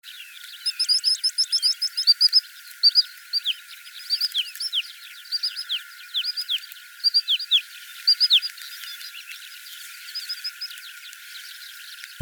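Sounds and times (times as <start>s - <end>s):
Isabelline wheatear Oenanthe isabellina call: 0.1s - 9.3s.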